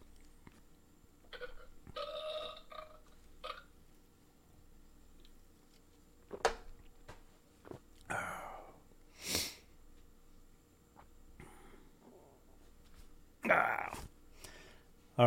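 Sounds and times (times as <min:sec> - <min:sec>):
low hiss: 0:00.0 - 0:15.2
burp: 0:01.2 - 0:03.7.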